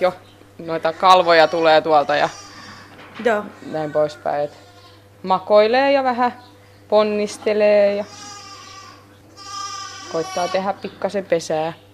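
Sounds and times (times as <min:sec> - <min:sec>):
speech: 0:00.0 - 0:02.4, 0:03.2 - 0:08.3, 0:10.1 - 0:11.8
sheep bleating: 0:00.7 - 0:02.9, 0:03.6 - 0:05.1, 0:07.9 - 0:10.8.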